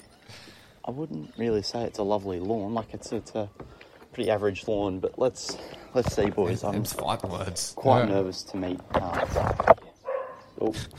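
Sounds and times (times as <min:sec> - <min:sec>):
speech: 0:00.3 - 0:09.8, 0:10.6 - 0:10.9
dog barking: 0:10.0 - 0:10.6.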